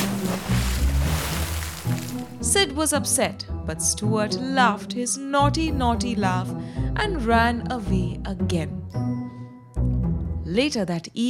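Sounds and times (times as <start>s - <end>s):
big splash of someone falling into a pond: 0.0s - 2.5s
speech: 2.4s - 9.2s, 10.5s - 11.2s.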